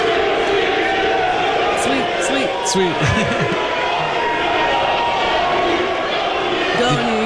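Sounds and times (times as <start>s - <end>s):
large crowd of sports fans chanting and cheering in arena hallways: 0.0s - 7.2s
laughter: 2.6s - 4.8s, 6.7s - 7.2s
speech: 2.7s - 3.7s.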